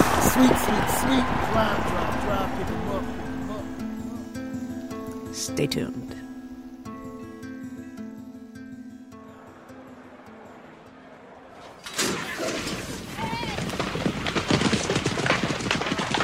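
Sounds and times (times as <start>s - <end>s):
horse hooves galloping: 0.0s - 4.2s, 10.0s - 16.2s
speech: 0.4s - 3.3s, 5.4s - 6.2s
steady musical tone: 0.8s - 11.6s.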